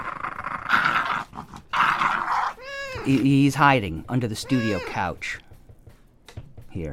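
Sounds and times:
dog growling at a cat: 0:00.0 - 0:03.1
dog whining: 0:02.0 - 0:03.2, 0:04.4 - 0:05.0
speech: 0:03.1 - 0:05.5, 0:06.8 - 0:06.9.

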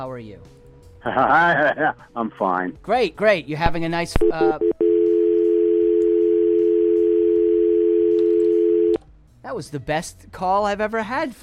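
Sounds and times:
speech: 0:00.0 - 0:04.8, 0:09.5 - 0:11.4
laughter: 0:01.0 - 0:02.2
steady loud telephone dial tone after call disconnects: 0:04.3 - 0:09.0.

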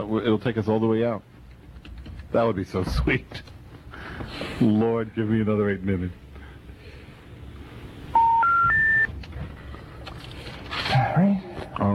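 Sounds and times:
speech: 0:00.1 - 0:01.3, 0:02.3 - 0:03.5, 0:04.2 - 0:06.2
telephone keypad tones as a phone number is dialed: 0:08.2 - 0:09.1.

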